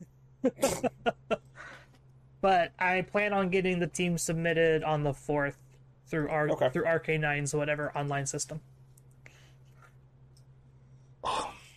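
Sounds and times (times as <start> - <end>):
speech: 0.0 - 1.2, 2.4 - 8.8
suppressed sneeze: 0.5 - 1.0
laughter: 0.8 - 1.4.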